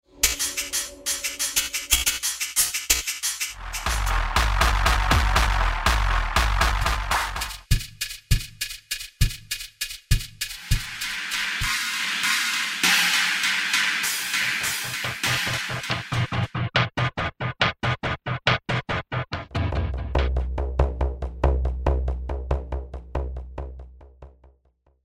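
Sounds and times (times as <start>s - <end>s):
percussion: 0.1s - 24.5s.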